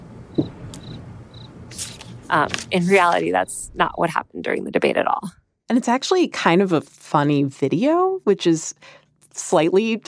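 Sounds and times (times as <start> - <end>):
brief thump: 0.3 - 0.6
crickets chirping: 0.3 - 1.6
speech: 2.3 - 10.0.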